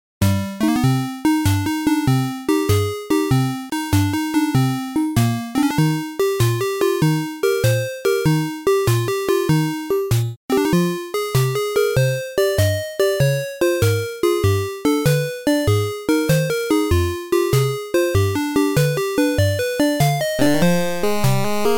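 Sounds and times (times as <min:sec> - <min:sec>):
8-bit chiptune music: 0:00.2 - 0:21.7.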